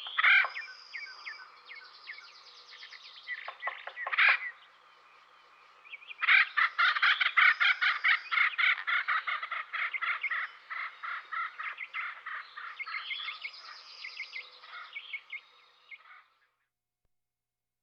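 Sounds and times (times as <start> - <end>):
Acorn woodpecker harsh nasal waka-like calls: 0.0 - 0.8, 3.4 - 4.6, 6.2 - 13.7.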